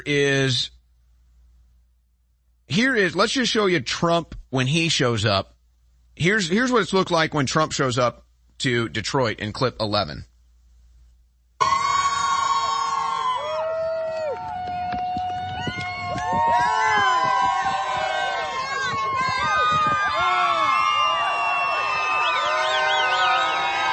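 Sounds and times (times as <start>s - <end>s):
speech: 0.0s - 0.8s, 2.7s - 5.6s, 6.2s - 10.3s
large rally crowd in Detroit cheering and shouting: 11.6s - 23.9s
rising falling siren-like wails: 11.6s - 23.9s
whistles: 20.6s - 23.9s.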